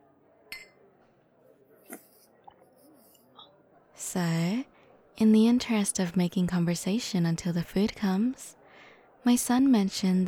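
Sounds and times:
low murmur of room noise: 0.0s - 10.2s
drinking glasses clinking in a toast: 0.5s - 0.8s
speech: 4.1s - 8.6s, 9.2s - 10.2s.

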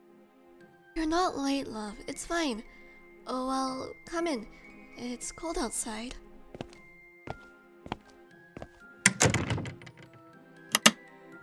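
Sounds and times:
speech: 1.0s - 6.2s
door lock being turned: 9.1s - 11.0s
heavy door shutting: 9.1s - 11.0s
knocks and bumps: 9.1s - 11.0s.

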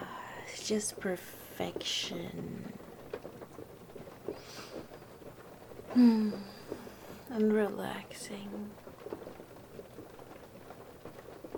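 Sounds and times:
steady rain pattering: 0.0s - 11.5s
speech: 0.6s - 2.8s, 6.0s - 6.6s, 7.3s - 8.8s.

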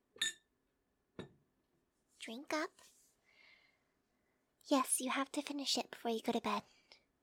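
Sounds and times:
glass of water set down on a hard surface: 0.2s - 0.5s
speech: 2.3s - 3.0s, 4.7s - 6.8s.

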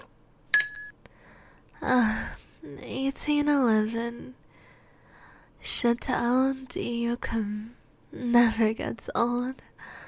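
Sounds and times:
glasses of white wine clinking in a toast: 0.6s - 0.9s
speech: 3.2s - 4.4s, 5.6s - 9.7s.

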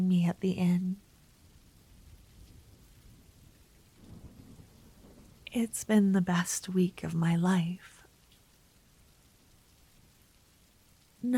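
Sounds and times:
speech: 0.0s - 1.0s, 5.5s - 8.0s
steady rain: 0.0s - 11.3s
thunder rumble: 1.4s - 5.9s.

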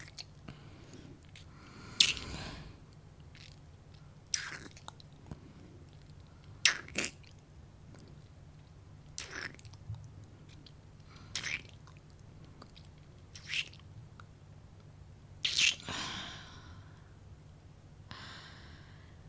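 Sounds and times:
faint low hum: 0.0s - 19.2s
soft wet kissing smacks: 1.4s - 2.3s, 4.4s - 4.9s, 6.7s - 7.2s, 9.2s - 9.6s, 13.4s - 13.8s, 15.4s - 15.8s.

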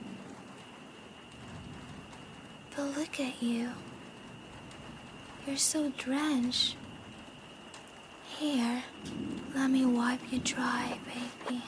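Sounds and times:
heavy rain pouring: 0.0s - 11.6s
speech: 2.8s - 3.9s, 5.5s - 6.8s, 8.4s - 11.6s.

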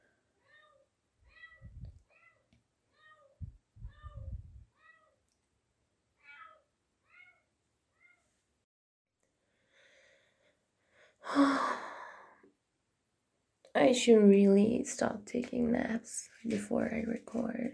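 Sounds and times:
cat meowing and yowling plaintively: 0.4s - 2.4s, 3.0s - 5.2s, 6.2s - 7.4s
soft low thumps: 1.6s - 2.0s, 3.4s - 4.6s
speech: 13.8s - 17.7s.

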